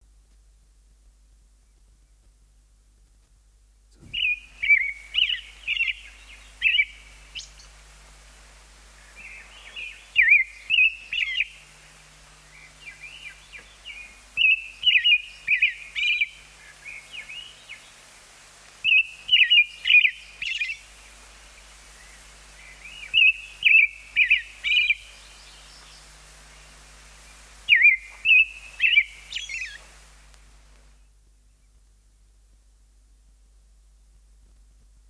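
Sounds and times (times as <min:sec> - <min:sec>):
songbirds singing: 0:03.9 - 0:31.8
robin singing: 0:04.0 - 0:07.8, 0:09.0 - 0:18.1, 0:18.8 - 0:30.0.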